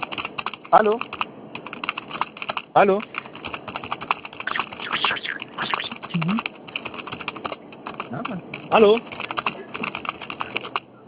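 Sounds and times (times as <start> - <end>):
typing on a computer keyboard heard through a phone line: 0.0 - 10.9
speech: 0.7 - 1.2, 2.8 - 3.1, 8.3 - 9.2.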